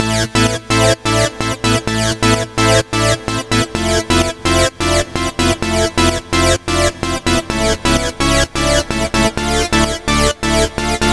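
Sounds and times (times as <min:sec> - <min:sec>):
synth chords in big room house style in A: 0:00.0 - 0:11.1.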